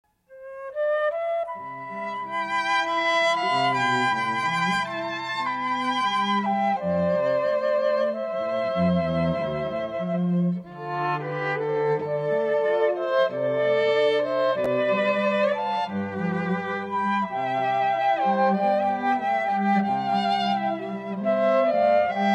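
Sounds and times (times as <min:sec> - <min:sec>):
flute trio playing: 0:00.3 - 0:22.3.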